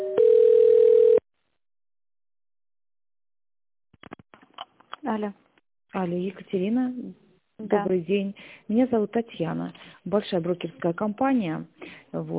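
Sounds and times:
telephone electronic beeps during a call transfer: 0:00.2 - 0:01.2
speech: 0:05.2 - 0:12.3.

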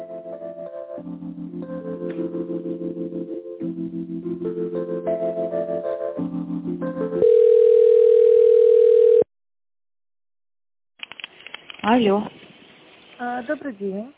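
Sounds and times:
pulsed touch-tone telephone dialing beeps: 0:07.2 - 0:09.3
speech: 0:12.0 - 0:12.3, 0:13.4 - 0:14.1.

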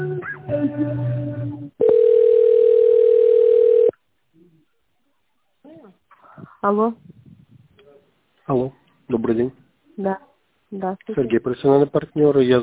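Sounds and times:
speech: 0:00.6 - 0:01.5, 0:06.6 - 0:07.1, 0:08.5 - 0:12.6
steady continuous telephone beep while a call is transferred: 0:01.8 - 0:04.0.

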